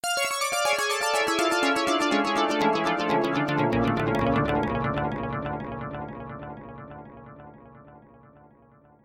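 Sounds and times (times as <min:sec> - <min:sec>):
arpeggios: 0:00.0 - 0:08.6.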